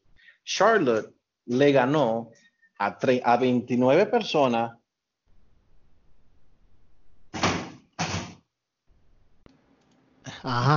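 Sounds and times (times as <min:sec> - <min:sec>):
speech: 0:00.5 - 0:04.8, 0:10.4 - 0:10.7
sharp knocks: 0:07.3 - 0:08.4
thrown chairs crashing and banging: 0:07.3 - 0:08.4.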